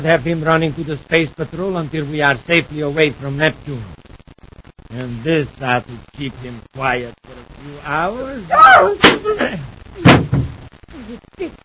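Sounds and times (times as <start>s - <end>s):
speech: 0.0s - 4.0s, 4.9s - 10.1s, 11.0s - 11.6s
short pained vocal sounds and grunts: 8.5s - 9.7s
hard thuds of a blow striking an old man: 10.0s - 10.7s.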